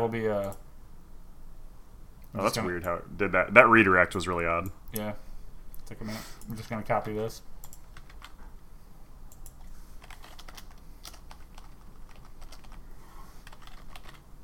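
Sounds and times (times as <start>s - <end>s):
speech: 0.1s - 0.6s, 2.3s - 5.2s, 5.9s - 7.5s
rapid typing on a computer keyboard: 7.0s - 8.4s, 9.3s - 12.8s, 13.4s - 14.3s.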